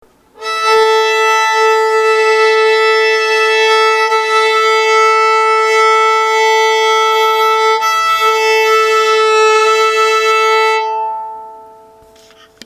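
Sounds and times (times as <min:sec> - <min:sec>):
violin A-E double stop for tuning: 0:00.4 - 0:12.5.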